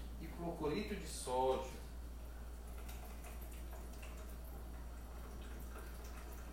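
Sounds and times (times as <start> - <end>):
speech: 0.2 - 1.8
water pouring into a small glass: 2.6 - 6.5.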